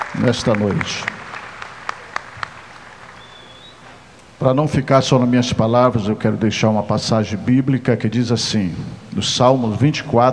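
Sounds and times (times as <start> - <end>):
audience applause at an evening ceremony: 0.0 - 3.7
speech: 0.2 - 1.2, 4.4 - 10.3.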